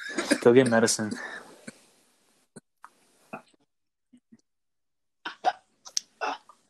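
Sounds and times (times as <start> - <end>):
person coughing: 0.1 - 1.5
speech: 0.4 - 1.5.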